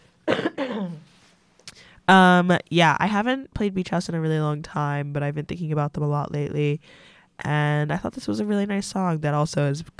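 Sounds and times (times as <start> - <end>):
rough coughs: 0.2 - 1.1
speech: 0.7 - 1.1, 2.1 - 9.9.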